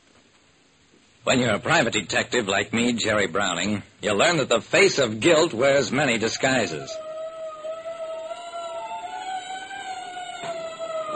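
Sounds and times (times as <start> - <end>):
speech: 1.2 - 7.0
siren wailing: 6.4 - 11.1.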